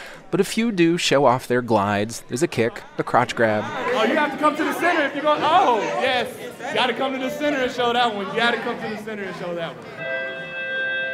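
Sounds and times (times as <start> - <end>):
students chattering: 0.0 - 11.1
speech: 0.3 - 10.2
school bell ringing: 9.8 - 11.1.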